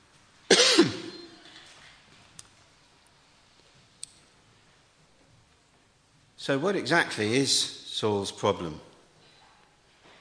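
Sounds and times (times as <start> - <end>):
harsh cough: 0.5 - 1.4
speech: 6.4 - 8.9.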